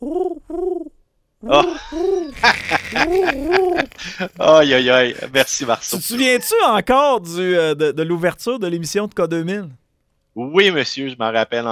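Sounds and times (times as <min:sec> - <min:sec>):
pigeon-like cooing: 0:00.0 - 0:03.9
speech: 0:01.5 - 0:01.8, 0:04.2 - 0:09.8, 0:10.4 - 0:11.7
laughter: 0:01.5 - 0:06.7.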